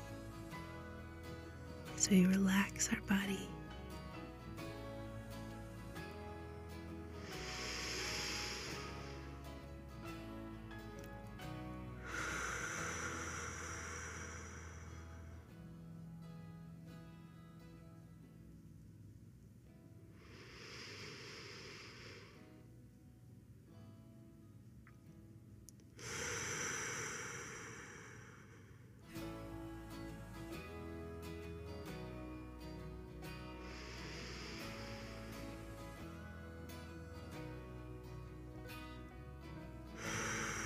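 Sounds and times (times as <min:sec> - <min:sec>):
soft steady music: 0:00.0 - 0:28.1, 0:29.0 - 0:40.6
speech: 0:02.0 - 0:03.6
deep slow breaths during a relaxation exercise: 0:03.9 - 0:15.8, 0:20.1 - 0:22.7, 0:26.0 - 0:39.0, 0:39.7 - 0:40.6.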